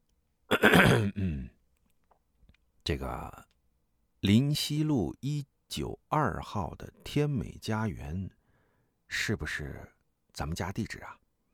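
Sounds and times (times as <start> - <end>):
student clearing his throat with coughs: 0.5 - 1.6
speech: 0.6 - 1.5, 2.9 - 3.5, 4.2 - 8.4, 9.1 - 11.2.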